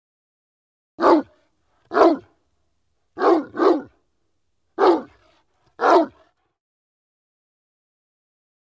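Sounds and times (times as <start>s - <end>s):
dog barking: 1.0s - 2.3s, 3.2s - 4.0s, 4.8s - 6.4s.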